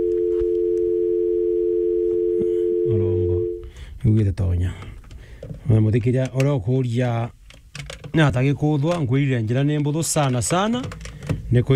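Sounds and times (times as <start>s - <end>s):
telephone tone: 0.0s - 3.6s
speech: 4.0s - 4.9s, 5.6s - 7.4s, 8.2s - 11.7s.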